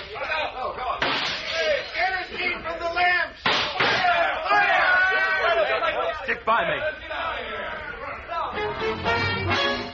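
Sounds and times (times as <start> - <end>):
voices: 0.0 - 8.6
sharp loud gunshot: 3.4 - 4.1
speech: 6.5 - 7.0, 8.7 - 9.8.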